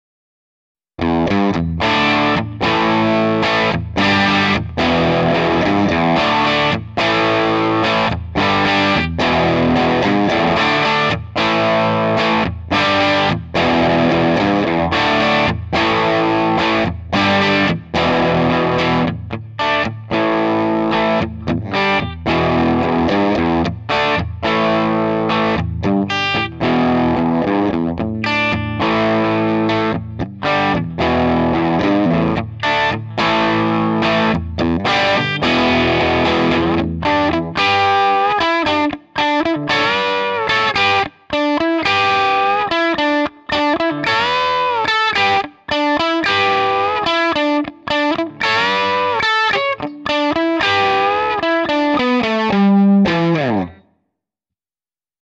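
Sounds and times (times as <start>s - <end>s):
Gibson SG Special electric guitar on treble pickup through DigiTech RP70 Marshall JCM800 model: 1.0s - 53.9s.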